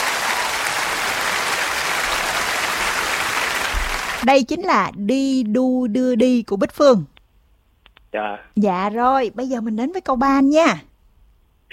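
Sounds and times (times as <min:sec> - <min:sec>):
crowd applause cheering on a contestant: 0:00.0 - 0:04.2
speech: 0:04.2 - 0:07.1, 0:08.1 - 0:10.9.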